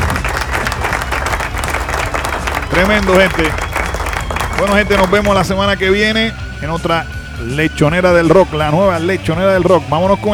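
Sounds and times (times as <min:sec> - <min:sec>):
applause of many hands clapping: 0:00.0 - 0:05.5
speech: 0:02.8 - 0:03.7, 0:04.6 - 0:10.3.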